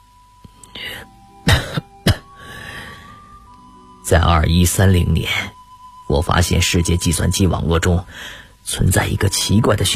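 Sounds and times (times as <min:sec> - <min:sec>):
soft breathy sounds: 0:00.5 - 0:03.6, 0:08.0 - 0:08.7
person coughing loudly: 0:01.4 - 0:02.4
speech: 0:04.1 - 0:09.9.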